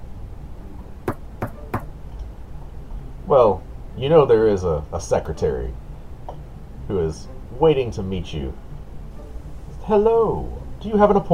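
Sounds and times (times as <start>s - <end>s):
knocking on a door: 1.1s - 1.9s
speech: 3.3s - 5.8s, 6.9s - 8.6s, 9.9s - 11.3s.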